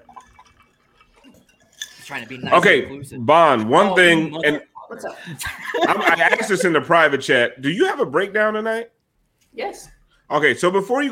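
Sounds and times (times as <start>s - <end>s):
water drips plinking: 0.0s - 2.9s
speech: 2.1s - 9.0s, 9.6s - 11.1s
laughter: 4.0s - 7.3s.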